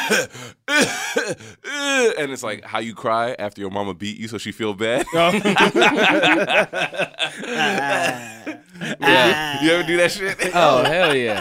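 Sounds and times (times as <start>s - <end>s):
person imitating coughing: 0.0s - 2.2s, 7.5s - 9.8s
speech: 0.1s - 11.3s
laughter: 5.0s - 11.3s.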